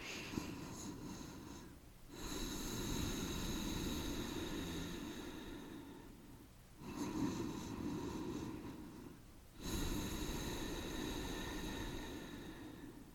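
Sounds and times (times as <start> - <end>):
nasal breathing with constricted throat: 0.0 - 13.1.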